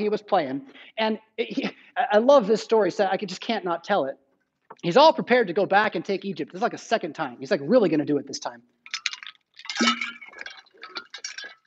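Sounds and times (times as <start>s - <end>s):
speech: 0.0s - 8.8s
wet slosh of liquid in a glass: 8.8s - 11.6s
ice cubes clinking and rattling against a glass: 8.9s - 11.6s.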